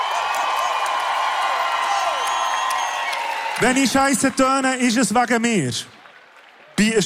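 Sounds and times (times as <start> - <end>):
scattered whoops: 0.0 - 3.7
large audience clapping: 0.0 - 7.0
whistles: 2.0 - 3.3
speech: 3.6 - 6.0, 6.8 - 7.0.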